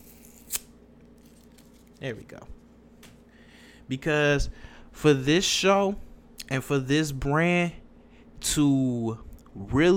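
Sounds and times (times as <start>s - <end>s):
paper being torn up: 0.0s - 2.2s
speech: 2.0s - 2.6s, 3.9s - 7.8s, 8.4s - 9.9s.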